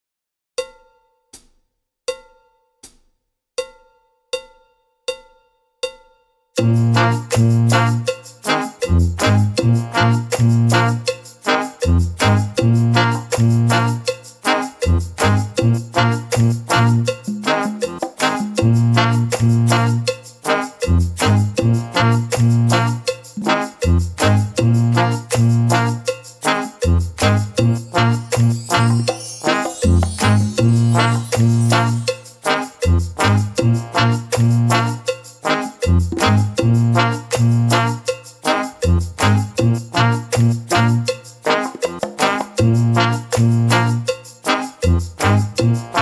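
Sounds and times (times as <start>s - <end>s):
reggae music without drums: 6.6s - 45.9s.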